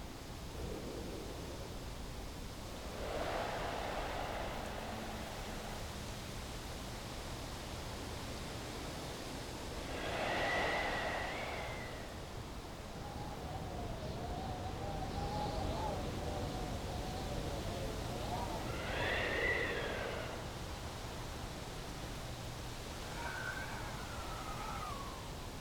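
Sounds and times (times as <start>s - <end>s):
eerie night wind over outdoor grassland: 0.1s - 25.6s.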